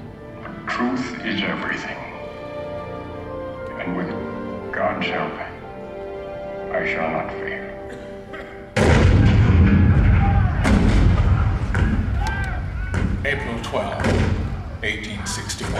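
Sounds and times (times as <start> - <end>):
speech: 0.7 - 2.1, 4.8 - 5.5, 6.7 - 8.0, 13.2 - 15.7
cannon fire with rumbling barrage of blasts: 8.8 - 12.2, 14.0 - 14.6.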